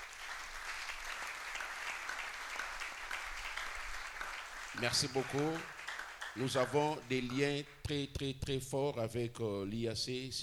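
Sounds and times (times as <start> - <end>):
crowd clapping: 0.0 - 8.0
speech: 4.8 - 5.8, 6.4 - 10.4.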